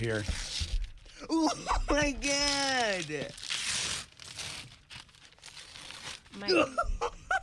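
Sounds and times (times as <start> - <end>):
speech: 0.0 - 0.5, 1.2 - 3.5, 6.4 - 7.2
wrapping paper on a big gift being torn open: 0.0 - 6.6.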